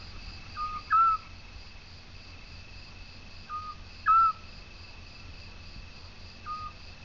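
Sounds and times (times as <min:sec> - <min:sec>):
Eurasian scops owl whistled piping calls: 0:00.5 - 0:01.3, 0:03.5 - 0:04.5, 0:06.4 - 0:06.8.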